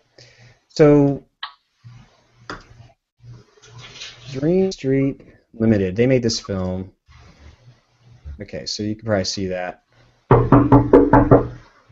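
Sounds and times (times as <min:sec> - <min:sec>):
speech: 0:00.8 - 0:01.3, 0:04.4 - 0:07.0, 0:08.4 - 0:11.6
children knocking on a house window: 0:10.3 - 0:11.6.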